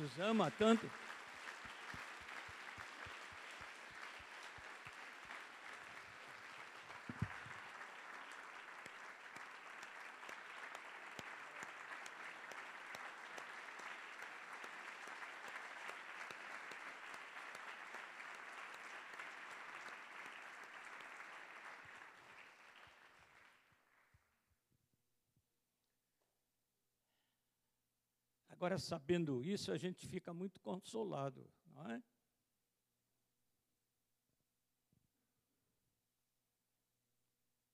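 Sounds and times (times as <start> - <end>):
speech: 0.0 - 1.1, 28.6 - 32.1
audience applauding: 0.0 - 24.2.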